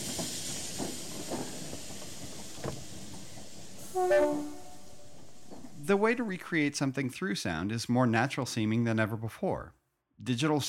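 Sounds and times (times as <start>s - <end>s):
steady hiss of a train at a rail station platform: 0.0s - 6.6s
train horn blast at a London rail station platform: 3.9s - 5.1s
speech: 4.0s - 4.6s, 5.9s - 10.6s.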